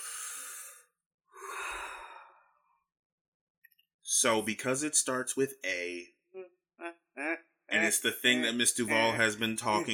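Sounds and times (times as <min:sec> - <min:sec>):
deep breath taken during a talk: 0:00.0 - 0:02.8
speech: 0:04.1 - 0:06.2, 0:07.9 - 0:09.9.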